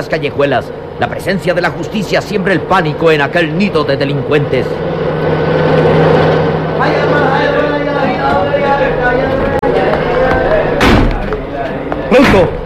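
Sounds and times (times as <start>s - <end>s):
speech: 0.0s - 5.0s, 12.2s - 12.6s
indistinct voices: 0.0s - 12.6s
vehicle engines roaring while speeding in: 0.0s - 12.6s
sharp thud: 10.8s - 11.3s.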